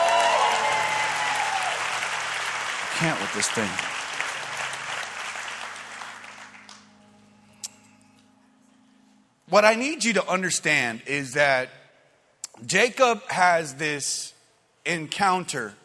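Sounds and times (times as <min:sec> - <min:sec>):
audience applause: 0:00.0 - 0:06.9
speech: 0:03.0 - 0:04.0, 0:09.5 - 0:11.8, 0:12.6 - 0:15.8.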